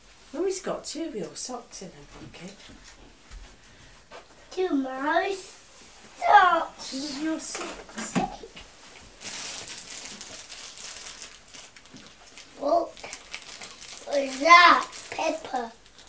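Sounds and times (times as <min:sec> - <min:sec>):
speech: 0:00.5 - 0:03.0, 0:04.5 - 0:05.6, 0:06.2 - 0:08.5, 0:12.6 - 0:13.0, 0:14.2 - 0:15.8
small plastic wrapping of a child's beaker crinkling: 0:09.1 - 0:16.0.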